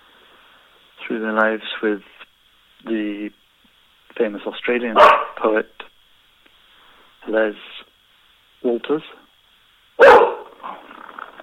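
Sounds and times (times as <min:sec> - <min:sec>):
speech: 0:01.1 - 0:02.1, 0:02.8 - 0:03.4, 0:04.2 - 0:05.8, 0:07.2 - 0:07.7, 0:08.6 - 0:09.2
dog barking: 0:05.0 - 0:05.4, 0:10.0 - 0:10.8.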